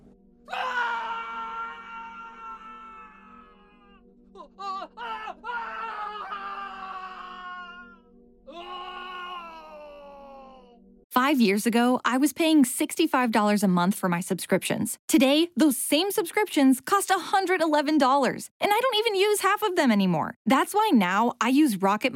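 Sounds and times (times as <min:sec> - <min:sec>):
person screaming: 0:00.5 - 0:10.8
speech: 0:11.3 - 0:22.1.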